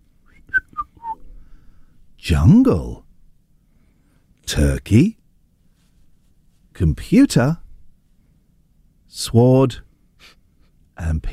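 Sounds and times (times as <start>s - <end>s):
short human whistle of descending notes: 0.3s - 1.3s
speech: 2.2s - 3.0s, 4.5s - 5.2s, 6.8s - 7.6s, 9.1s - 10.4s, 11.0s - 11.3s.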